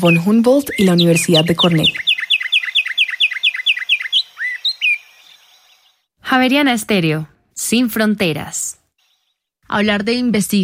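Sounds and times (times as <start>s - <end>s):
speech: 0.0s - 2.1s, 6.4s - 8.8s, 9.7s - 10.6s
cone-billed finch trilling: 0.0s - 6.0s.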